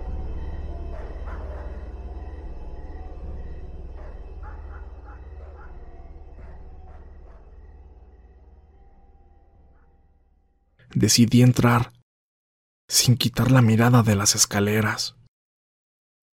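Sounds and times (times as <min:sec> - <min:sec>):
dogs barking at a house: 0:00.7 - 0:02.4, 0:03.8 - 0:08.1, 0:09.6 - 0:10.0
speech: 0:11.0 - 0:12.0, 0:12.9 - 0:15.2.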